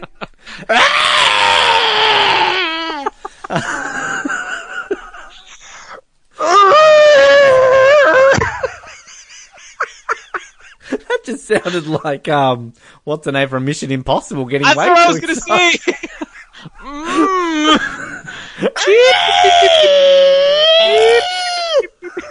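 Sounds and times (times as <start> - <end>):
speech: 0.7 - 1.0, 11.6 - 16.0
creature's shrill warbling scream sound effect: 0.7 - 3.2, 6.4 - 8.4, 18.8 - 21.8
laughter: 2.7 - 6.0, 8.1 - 12.0, 14.7 - 20.0, 20.9 - 22.2.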